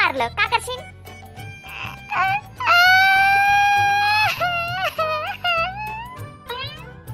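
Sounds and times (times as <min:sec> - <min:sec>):
speech: 0:00.1 - 0:01.0
person crying loudly with wailing sobs: 0:01.5 - 0:06.3.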